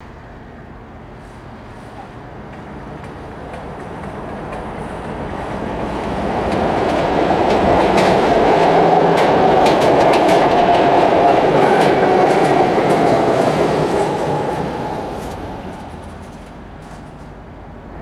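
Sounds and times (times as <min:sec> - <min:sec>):
electric streetcar passing by on tracks: 0:00.0 - 0:17.9.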